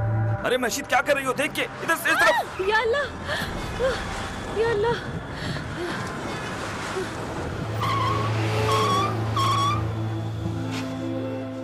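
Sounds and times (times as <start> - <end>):
speech: 0.4 - 6.2
steady low car engine rumble: 2.4 - 11.6
car tires screeching in a skid: 3.2 - 11.2.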